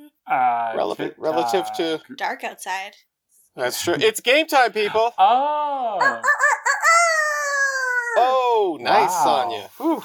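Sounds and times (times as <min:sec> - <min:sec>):
speech: 0:00.3 - 0:06.6, 0:08.2 - 0:10.0
person imitating a rooster crow: 0:06.0 - 0:08.4.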